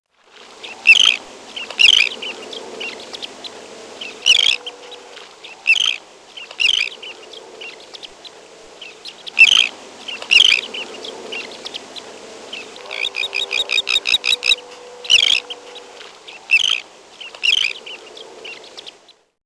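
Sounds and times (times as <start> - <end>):
Elegant Tern rasping calls: 0.6 - 19.1
quiet bird chatter: 0.6 - 19.3.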